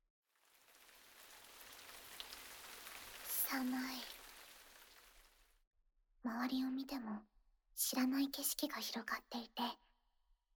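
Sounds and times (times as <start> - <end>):
steady rain pouring onto a hard surface: 0.3 - 5.6
speech: 3.5 - 4.1, 6.3 - 9.8.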